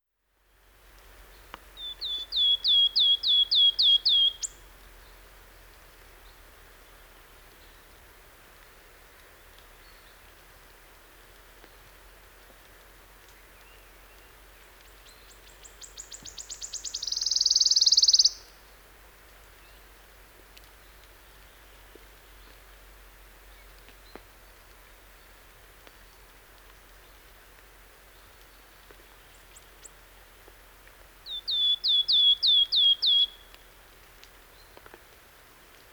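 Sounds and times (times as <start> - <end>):
wood warbler birdsong: 1.4 - 4.6, 13.5 - 18.6, 31.2 - 33.6.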